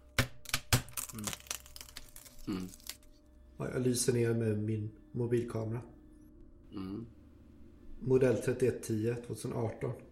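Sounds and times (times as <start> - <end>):
wooden planks cracking and snapping: 0.2 - 3.0
speech: 1.2 - 1.4, 2.4 - 2.8, 3.6 - 6.0, 6.7 - 7.2, 8.0 - 10.1.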